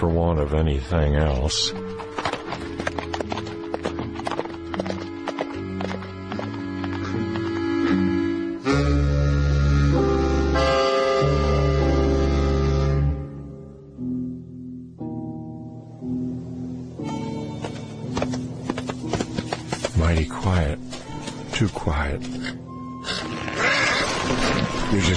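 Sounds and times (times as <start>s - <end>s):
speech: 0.0s - 2.1s
sustained tonal background: 0.0s - 25.1s
horse walking with hooves clip-clopping: 1.3s - 8.3s, 17.6s - 21.6s.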